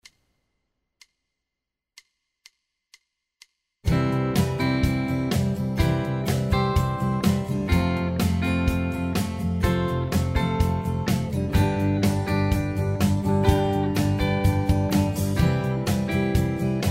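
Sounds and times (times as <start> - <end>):
simple CAGED guitar chords: 3.9 - 16.8.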